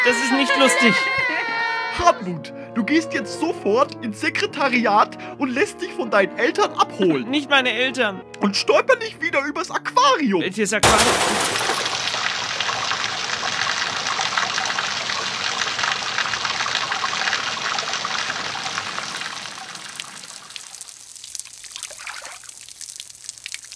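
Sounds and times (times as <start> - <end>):
speech: 0.0 - 1.4, 2.0 - 11.8
loud churning water splashing: 10.8 - 12.8, 19.0 - 23.7
water dripping and trickling as it settles: 10.9 - 23.7.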